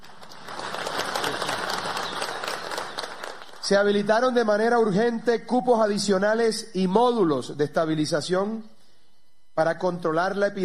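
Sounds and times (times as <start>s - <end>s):
audience applause: 0.0s - 3.7s
speech: 3.7s - 8.7s, 9.6s - 10.6s.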